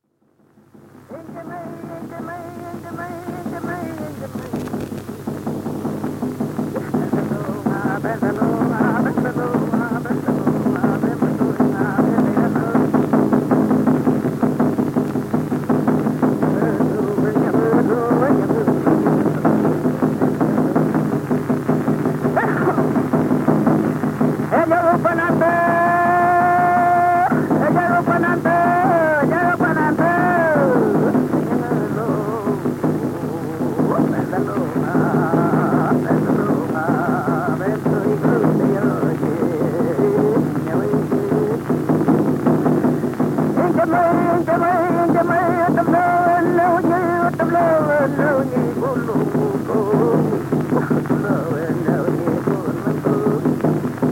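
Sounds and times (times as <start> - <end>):
Mapuche machi singing a song of illness or death: 1.1 - 4.9, 6.7 - 14.4, 15.6 - 54.0
kultrún drum beating: 1.1 - 54.0.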